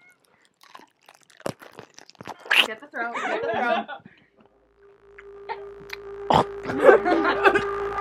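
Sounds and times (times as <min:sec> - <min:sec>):
person crunching on a pickle: 0:00.0 - 0:02.8
soft chewing: 0:00.0 - 0:02.9
speech: 0:02.7 - 0:04.1
laughter: 0:03.0 - 0:04.2, 0:06.6 - 0:07.9.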